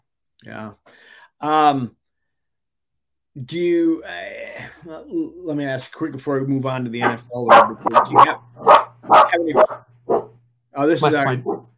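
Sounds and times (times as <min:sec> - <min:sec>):
speech: 0:00.4 - 0:02.0, 0:03.4 - 0:09.9, 0:10.8 - 0:11.7
dog barking: 0:07.0 - 0:10.3, 0:11.2 - 0:11.7.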